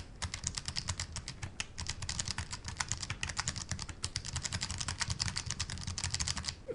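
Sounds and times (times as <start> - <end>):
gentle typing on a keyboard: 0.2 - 6.6.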